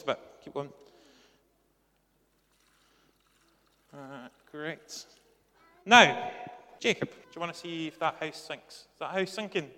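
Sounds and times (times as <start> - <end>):
speech: 0.0 - 0.9, 3.9 - 5.2, 5.8 - 9.7
water being poured onto a rock: 2.3 - 5.2.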